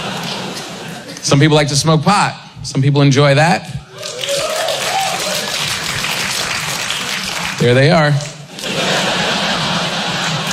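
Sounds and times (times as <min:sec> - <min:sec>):
laughter: 0:00.0 - 0:01.2, 0:08.5 - 0:10.5
speech: 0:01.3 - 0:03.8, 0:07.6 - 0:08.3
scattered applause from audience members at a stand-up comedy set: 0:03.9 - 0:10.5.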